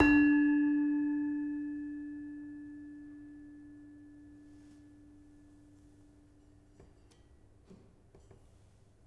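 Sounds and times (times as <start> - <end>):
demung played softly in a gamelan: 0.0 - 5.3.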